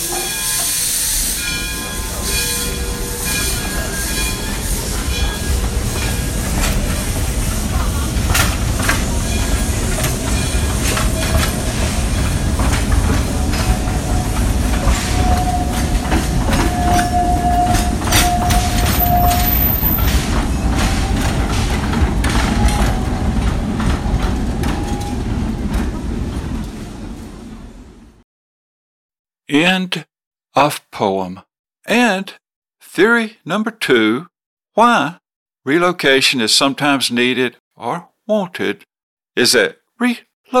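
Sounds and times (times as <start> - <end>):
thin metallic squeal: 0.0 - 12.7, 13.3 - 21.8
train rolling on rails with clickety-clack of the wheels: 0.0 - 28.1
speech: 30.6 - 32.4, 33.0 - 40.5.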